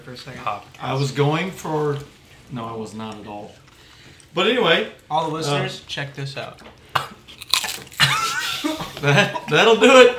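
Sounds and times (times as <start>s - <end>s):
speech: 0.0s - 3.6s, 4.3s - 7.2s, 9.0s - 10.1s
brittle crackling and chewing of pizza: 0.2s - 9.1s
person biting into crunchy thin-crust pizza: 6.3s - 8.8s
laughter: 8.0s - 9.6s.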